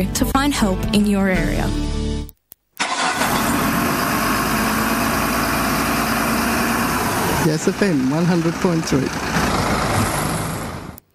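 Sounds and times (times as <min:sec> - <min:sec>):
speech: 0:00.0 - 0:02.0, 0:07.4 - 0:09.4
truck engine rumbling: 0:02.8 - 0:11.1.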